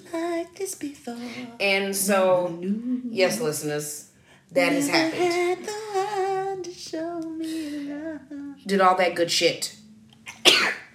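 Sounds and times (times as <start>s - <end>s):
speech: 0.1s - 6.0s, 6.7s - 9.8s
sneeze: 10.3s - 10.9s.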